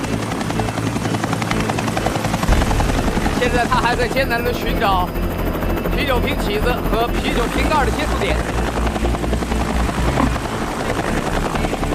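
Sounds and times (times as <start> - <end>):
constant helicopter whine: 0.0 - 11.9
helicopter rotor hovering: 0.0 - 11.9
speech: 3.4 - 8.5.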